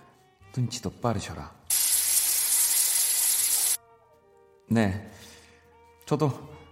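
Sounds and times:
speech: 0:00.6 - 0:01.6, 0:04.7 - 0:05.3, 0:06.1 - 0:06.6
hair mousse aerosol can spraying to style a fringe: 0:01.7 - 0:03.8.

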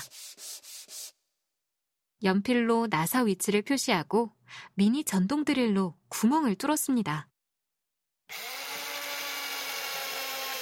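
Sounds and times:
sandpaper scraping across rough wood: 0:00.0 - 0:01.2
speech: 0:02.2 - 0:07.3.

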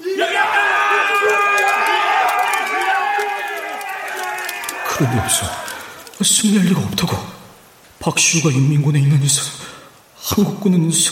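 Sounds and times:
crowd of company soldiers cheering and shouting in victory: 0:00.0 - 0:06.2
speech: 0:05.0 - 0:07.4, 0:08.0 - 0:11.0.

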